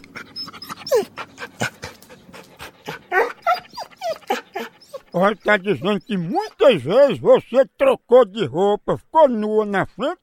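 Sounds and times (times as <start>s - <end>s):
dog panting: 0.0s - 6.6s
speech: 5.2s - 10.2s.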